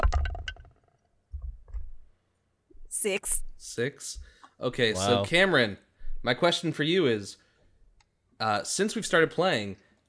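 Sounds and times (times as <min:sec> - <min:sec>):
D20 die clattering and rattling against a hard surface: 0:00.0 - 0:01.9
speech: 0:03.0 - 0:07.4, 0:08.4 - 0:09.8.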